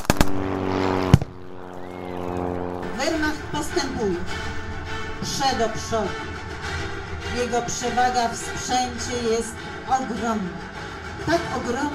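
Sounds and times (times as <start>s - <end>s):
Polish soldiers firing guns at a flying target: 0.0s - 1.3s
steady droning engine hum: 0.0s - 11.9s
speech: 3.1s - 4.6s, 5.2s - 6.4s, 7.4s - 11.9s.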